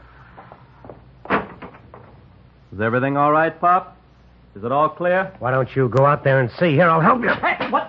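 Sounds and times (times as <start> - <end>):
street door opening with a solid clunk: 1.2 - 2.2
speech: 2.7 - 4.0, 4.6 - 7.8.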